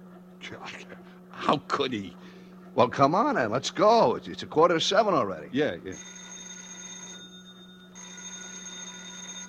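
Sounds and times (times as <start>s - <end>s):
speech: 0.5s - 2.2s, 2.8s - 6.2s
telephone bell ringing: 5.9s - 9.4s.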